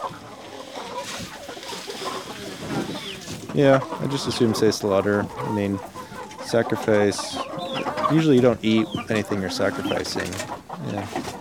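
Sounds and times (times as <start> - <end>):
rooster clucking: 0.0 - 11.4
speech: 3.6 - 11.3.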